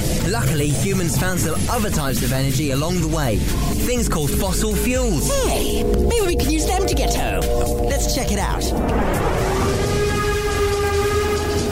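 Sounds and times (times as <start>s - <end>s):
steam train rumbling along: 0.0s - 11.7s
speech: 0.3s - 9.8s
sustained multi-tone steam train whistle: 9.4s - 11.7s.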